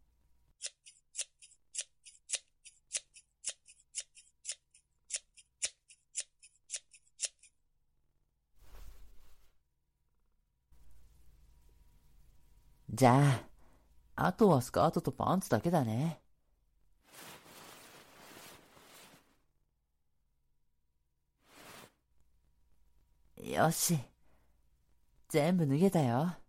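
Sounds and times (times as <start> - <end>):
scissors cutting through clothing fabric: 0.6 - 7.6
fabric rustling: 8.6 - 9.6, 17.0 - 19.6, 21.4 - 22.1
soft shuffling: 8.6 - 9.6, 17.0 - 19.4
speech: 13.0 - 13.5, 14.2 - 16.2, 23.6 - 24.1, 25.3 - 26.4.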